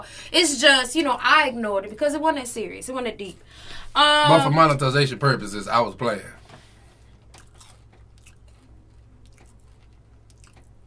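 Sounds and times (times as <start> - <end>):
speech: 0.0 - 6.4
wet chewing and crunching of food: 7.0 - 10.8.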